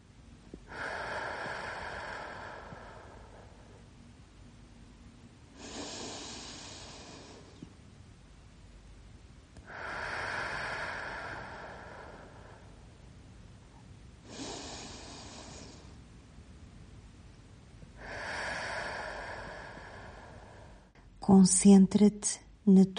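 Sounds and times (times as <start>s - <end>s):
slow deep breathing with long airy inhales and exhales: 0.6s - 3.9s, 5.5s - 7.7s, 9.6s - 13.0s, 14.2s - 16.1s, 18.0s - 21.1s
speech: 21.3s - 22.9s.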